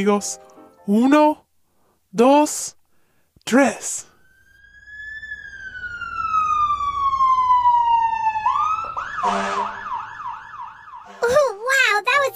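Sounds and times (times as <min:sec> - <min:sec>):
speech: 0:00.0 - 0:01.4, 0:02.1 - 0:02.8, 0:03.4 - 0:04.1, 0:09.2 - 0:09.8
fire truck siren wailing and yelping: 0:04.2 - 0:11.4.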